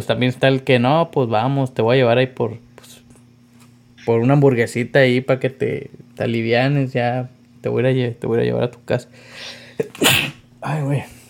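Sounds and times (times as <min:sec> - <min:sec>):
speech: 0:00.0 - 0:02.7, 0:04.0 - 0:11.2
faint low hum: 0:00.0 - 0:11.2
sharp intake of breath: 0:09.1 - 0:10.4
person sneezing: 0:09.8 - 0:10.5.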